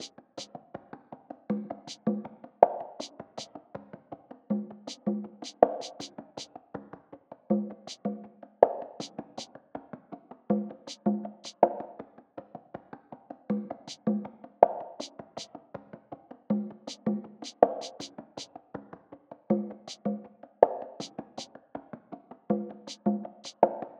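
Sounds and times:
percussion loop at 80: 0:00.0 - 0:23.9.

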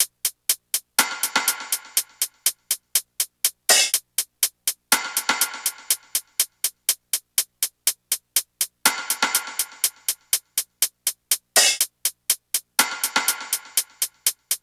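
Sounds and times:
percussion top drum loop: 0:00.0 - 0:14.6.

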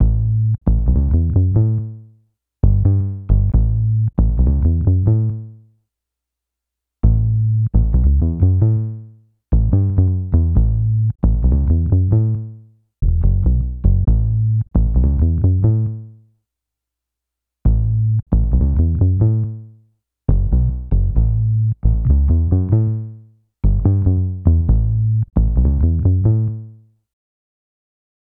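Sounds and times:
synth bass loop in A: 0:00.0 - 0:01.9, 0:02.6 - 0:05.4, 0:07.0 - 0:08.9, 0:09.5 - 0:16.0, 0:17.7 - 0:19.6, 0:20.3 - 0:26.6.

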